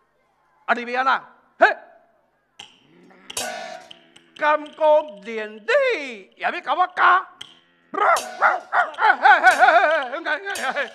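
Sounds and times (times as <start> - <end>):
speech: 0.7 - 1.8, 4.4 - 10.9
stray dog barking: 8.0 - 9.3
laughter: 8.0 - 10.9.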